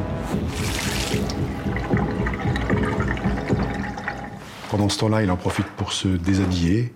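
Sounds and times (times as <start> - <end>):
water running from a bathroom tap into a basin: 0.5 - 4.6
speech: 4.8 - 6.9.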